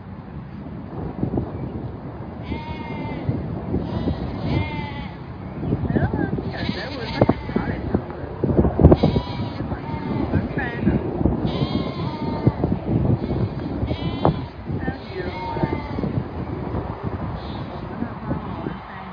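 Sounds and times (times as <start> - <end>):
light wind noise: 0.0 - 19.1
sheep bleating on a large fenced pasture: 2.4 - 5.2, 6.4 - 7.8, 9.0 - 10.4, 11.4 - 16.2.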